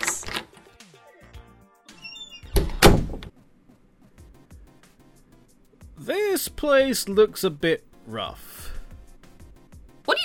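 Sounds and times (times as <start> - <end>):
bar door in a temple scraping and rattling as it swings open: 2.1 - 3.3
soft low door latch thunks of a bar door in a temple: 2.5 - 3.3
speech: 6.1 - 8.5.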